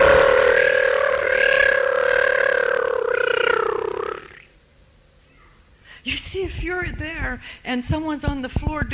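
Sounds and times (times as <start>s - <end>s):
person's voice imitating lion roaring and grunting: 0.0s - 4.5s
speech: 6.8s - 8.9s.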